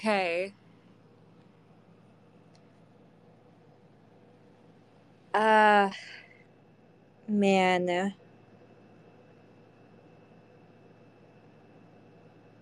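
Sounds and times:
speech: 0.0s - 0.6s, 5.3s - 6.2s, 7.3s - 8.2s
air conditioner hum: 0.0s - 12.6s.

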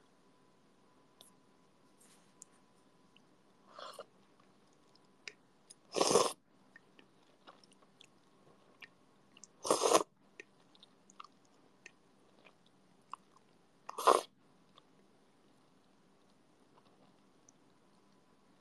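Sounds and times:
chewing a first bite of ramen: 3.1s - 15.1s.

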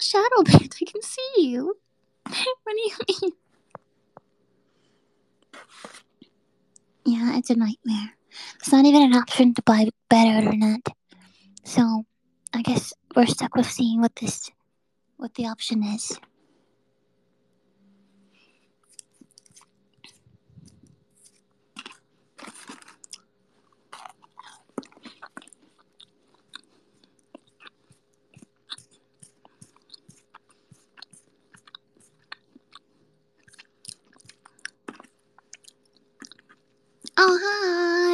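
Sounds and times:
speech: 0.1s - 3.4s, 7.1s - 11.0s, 11.6s - 14.6s, 15.2s - 16.3s
munching on crunchy snickerdoodle cookies: 5.4s - 6.9s, 18.3s - 37.2s.

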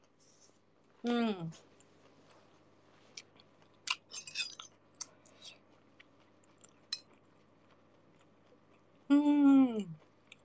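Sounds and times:
person chewing crunchy food: 1.6s - 9.1s, 9.9s - 10.4s.

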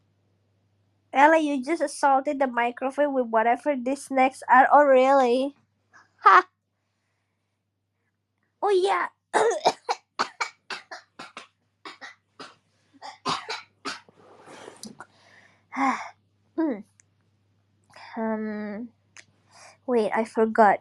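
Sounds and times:
speech: 1.2s - 5.6s, 6.2s - 6.5s, 8.6s - 9.7s, 15.8s - 16.9s, 18.2s - 19.0s, 19.9s - 20.7s
person coughing harshly: 9.4s - 15.1s
wheezy breaths: 14.2s - 16.2s, 19.4s - 19.9s.

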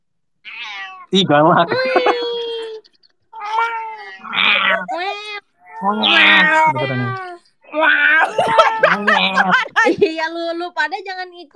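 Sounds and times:
cat meowing and yowling: 0.5s - 1.2s, 3.4s - 9.5s
speech: 1.1s - 2.0s, 5.8s - 11.5s
laughter: 1.2s - 3.0s, 8.2s - 10.3s.

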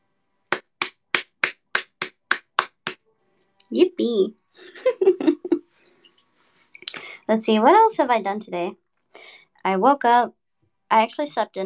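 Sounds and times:
hand slapping thigh: 0.5s - 3.0s
speech: 3.7s - 5.4s, 7.3s - 8.8s, 9.6s - 11.6s
laughter: 4.6s - 5.6s.

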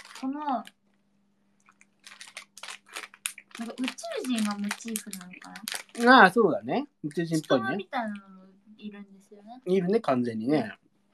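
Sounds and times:
speech: 0.2s - 0.8s, 3.6s - 10.8s
crunchy chewing of hard gummy candy: 1.6s - 6.3s.

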